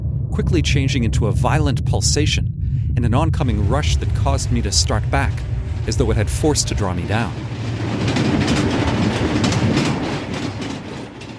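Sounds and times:
speech: 0:00.4 - 0:08.1
rapid steam train rushing past: 0:03.4 - 0:11.3
clickety-clack of steam train wheels: 0:05.3 - 0:11.3.

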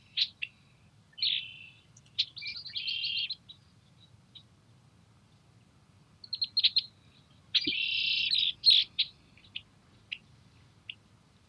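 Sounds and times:
red-winged blackbird singing in cattails: 0:01.2 - 0:04.1, 0:07.6 - 0:10.2.

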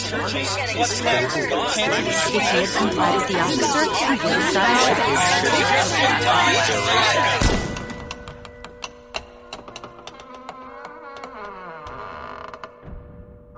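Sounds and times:
laughter: 0:00.0 - 0:07.6
speech: 0:00.2 - 0:07.6
heavy church doors creaking shut: 0:05.7 - 0:13.3.

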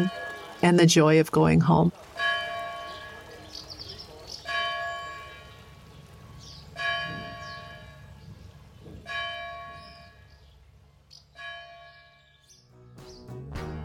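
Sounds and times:
church bells ringing: 0:00.0 - 0:00.7, 0:02.2 - 0:03.4, 0:04.4 - 0:05.8, 0:06.8 - 0:08.2, 0:09.1 - 0:10.3, 0:11.4 - 0:12.3
speech: 0:00.0 - 0:02.1.

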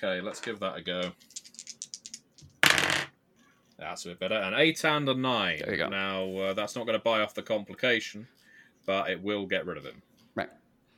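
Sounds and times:
speech: 0:00.0 - 0:01.4, 0:03.8 - 0:10.6
two dice rattling and clattering across a hard surface: 0:01.0 - 0:03.1.

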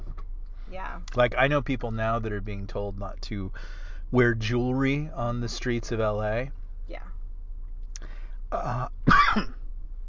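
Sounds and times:
speech: 0:00.7 - 0:07.2, 0:08.5 - 0:09.6
person burping: 0:08.6 - 0:09.5
person coughing: 0:08.6 - 0:09.6.

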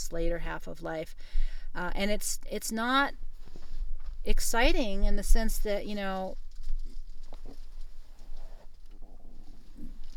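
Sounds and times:
speech: 0:00.1 - 0:03.3, 0:04.2 - 0:06.4
dog snuffly grunts: 0:06.6 - 0:10.1.

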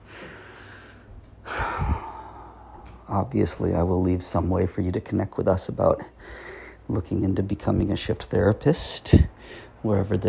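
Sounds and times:
long deep breath during a guided breathing exercise: 0:00.0 - 0:03.0, 0:06.2 - 0:06.8
speech: 0:03.1 - 0:10.2.

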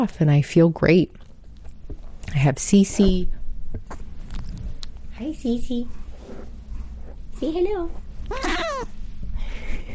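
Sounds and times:
speech: 0:00.0 - 0:01.2, 0:02.3 - 0:03.4, 0:05.2 - 0:06.0, 0:07.4 - 0:08.9
faint room noise: 0:00.0 - 0:09.9
elderly cat meowing: 0:08.3 - 0:08.9.

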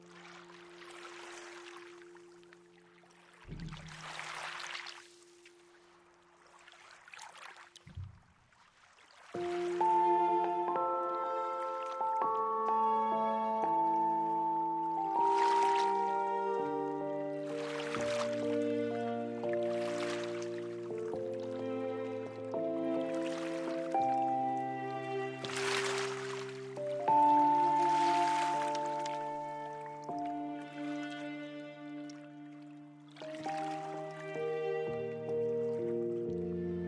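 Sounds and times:
Columbia River lapping: 0:00.0 - 0:36.8
sustained strings: 0:03.5 - 0:04.5, 0:09.4 - 0:36.8
piano notes: 0:09.4 - 0:36.8.

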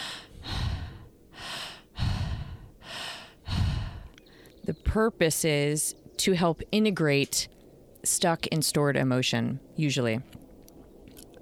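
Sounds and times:
fast deep breathing during a transformational breathing practice: 0:00.0 - 0:04.6
speech: 0:04.7 - 0:10.4.

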